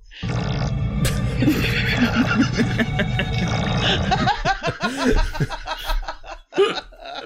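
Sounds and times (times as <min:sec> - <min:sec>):
wet sputtering flatulent burst with phaser effect: 0:00.2 - 0:02.4, 0:03.2 - 0:04.3
laughter: 0:01.2 - 0:07.2.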